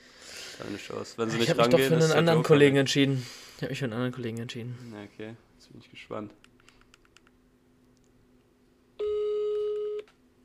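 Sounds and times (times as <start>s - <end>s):
speech: 0.6s - 6.5s
telephone ringback tone on an outgoing call: 9.0s - 10.0s.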